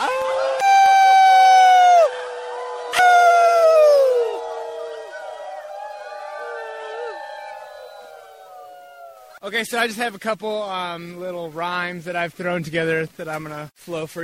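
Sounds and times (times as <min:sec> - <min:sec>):
crowd of people howling like wolves at an Earth First Rendezvous: 0:00.0 - 0:09.4
speech: 0:09.5 - 0:14.2.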